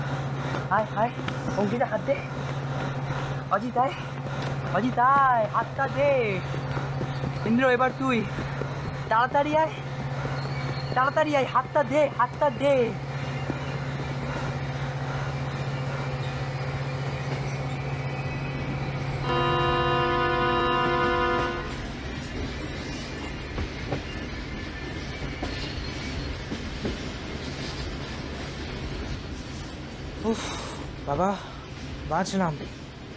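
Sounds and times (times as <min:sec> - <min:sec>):
train running on rails: 0:00.0 - 0:33.1
speech: 0:00.7 - 0:02.6, 0:03.5 - 0:06.8, 0:07.5 - 0:09.8, 0:10.9 - 0:13.1, 0:31.2 - 0:31.5, 0:32.1 - 0:32.8
train horn blast: 0:19.2 - 0:21.8.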